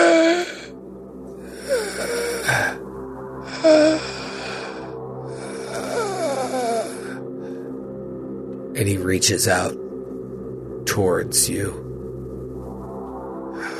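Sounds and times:
voice imitating labored raspy gasping breaths: 0:01.4 - 0:02.8, 0:03.5 - 0:07.7, 0:13.6 - 0:13.7
speech: 0:08.8 - 0:09.8, 0:11.0 - 0:11.9.

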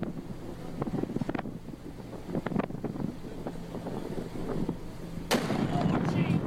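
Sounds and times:
wind-buffeted low rumbling: 0:00.0 - 0:06.4
powerful explosion shock wave: 0:05.3 - 0:06.4.

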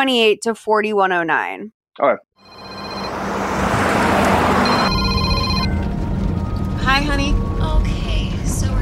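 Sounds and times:
speech: 0:00.0 - 0:02.8, 0:07.0 - 0:07.4
phone ringback tone on an outgoing call: 0:02.4 - 0:03.3, 0:04.6 - 0:05.9
road and car noise rumbling: 0:02.4 - 0:08.8.

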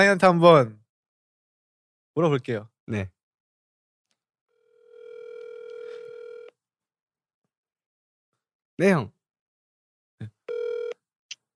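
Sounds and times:
speech: 0:00.0 - 0:00.8, 0:02.2 - 0:03.2, 0:08.8 - 0:09.2
electronic ringback tone from an outgoing phone call: 0:04.6 - 0:06.5, 0:10.5 - 0:11.0.

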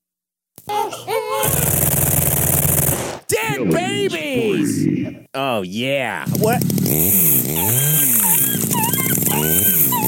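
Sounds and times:
loud harsh distorted chainsaw-like shredding effect: 0:01.4 - 0:03.2, 0:06.3 - 0:10.0
speech: 0:03.3 - 0:08.2
dog whimpering and whining: 0:07.4 - 0:10.0.

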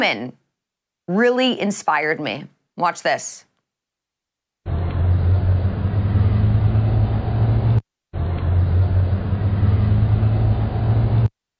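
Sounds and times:
speech: 0:00.0 - 0:00.4, 0:01.1 - 0:03.5
car engine and road rumble: 0:04.7 - 0:11.3.

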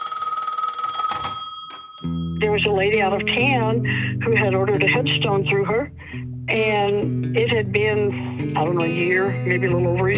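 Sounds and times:
telephone ringing with a rapid trilling bell: 0:00.0 - 0:03.7
speech: 0:02.0 - 0:10.1.

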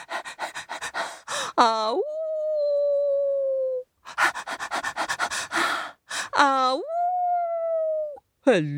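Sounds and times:
voice imitating dog panting: 0:00.0 - 0:01.2, 0:04.1 - 0:05.6
speech: 0:01.6 - 0:02.1, 0:06.4 - 0:06.9, 0:08.5 - 0:08.7
person imitating a dog with a long sustained whining howl: 0:01.6 - 0:03.8, 0:06.4 - 0:08.2.

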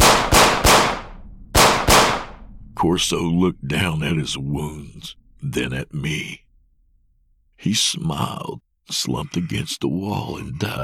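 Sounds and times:
pistol gunshots fired repeatedly in a corridor: 0:00.0 - 0:02.6
speech: 0:02.8 - 0:06.4, 0:07.6 - 0:10.8.

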